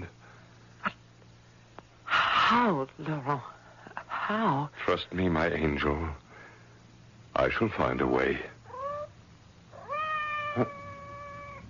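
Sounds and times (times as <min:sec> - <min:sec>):
speech: 0:02.5 - 0:03.6, 0:04.3 - 0:06.2, 0:07.4 - 0:08.6, 0:10.6 - 0:10.8
cat meowing outside a door: 0:08.7 - 0:09.1, 0:09.7 - 0:11.6.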